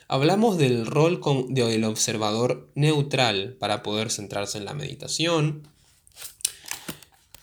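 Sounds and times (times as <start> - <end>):
speech: 0.1 - 6.3
sharper paper snap: 6.2 - 7.4.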